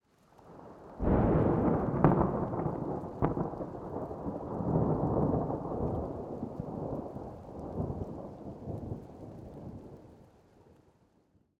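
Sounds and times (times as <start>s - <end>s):
distant thunder in mountains: 1.0s - 9.0s.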